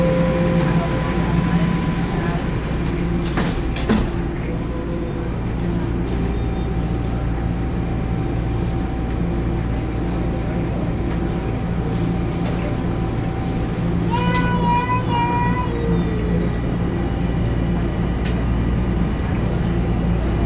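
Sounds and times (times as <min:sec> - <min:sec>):
low rumble and hum of subway train carriage: 0:00.0 - 0:20.4
subway train doors sliding shut at a station: 0:02.8 - 0:06.3.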